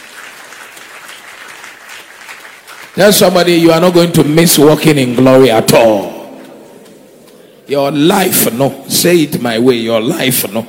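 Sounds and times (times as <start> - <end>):
congregation clapping during a church service: 0.0 - 5.2
speech: 3.0 - 6.2, 7.7 - 10.6.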